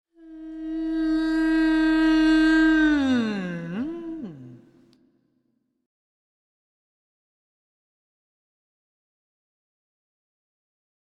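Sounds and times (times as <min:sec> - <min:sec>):
person humming with closed mouth in waves: 0:00.2 - 0:04.7.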